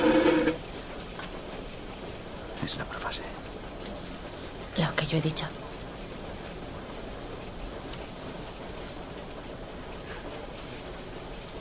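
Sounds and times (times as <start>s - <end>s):
rain falling: 0.0s - 11.5s
speech: 2.6s - 3.3s, 4.8s - 5.6s
faint water drips: 3.2s - 11.5s.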